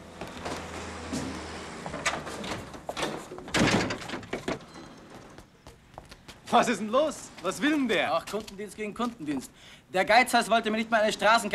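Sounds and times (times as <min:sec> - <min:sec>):
lock or latch clunk and scraping: 0:00.4 - 0:05.4
door pushed shut with knocks and rattles: 0:02.0 - 0:04.7
speech: 0:06.5 - 0:11.5.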